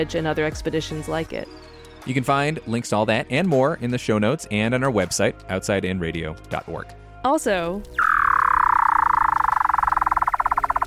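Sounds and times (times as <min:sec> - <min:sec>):
speech: 0:00.0 - 0:08.1
low tonal hums: 0:07.8 - 0:10.8
Weddell seal trill in Antarctica: 0:07.9 - 0:10.8.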